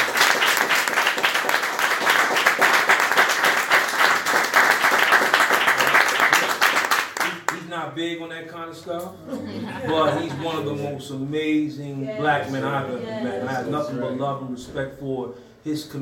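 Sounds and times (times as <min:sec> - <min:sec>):
audience applause at a rally: 0:00.0 - 0:07.6
speech: 0:08.0 - 0:15.9
laughter: 0:09.2 - 0:10.9.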